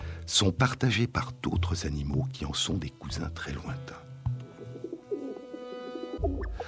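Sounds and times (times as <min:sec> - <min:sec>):
speech: 0:00.3 - 0:04.1, 0:06.2 - 0:06.6
pigeons cooing: 0:04.2 - 0:06.6.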